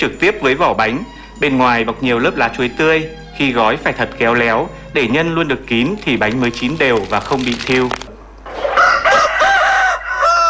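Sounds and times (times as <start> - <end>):
speech: 0.0 - 8.1
rooster crowing at dawn: 8.5 - 10.4.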